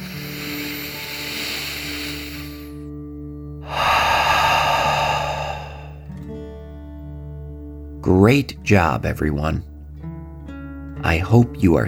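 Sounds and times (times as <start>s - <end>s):
slow deep breath in and out during a relaxation exercise: 0.0s - 2.9s, 3.6s - 6.3s
speech: 8.1s - 9.7s, 11.1s - 11.8s.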